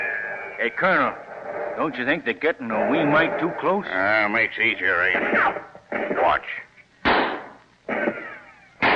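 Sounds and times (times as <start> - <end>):
speech: 0.6 - 1.2, 1.8 - 6.6
musket shots: 5.1 - 6.4, 7.0 - 8.2, 8.8 - 8.9.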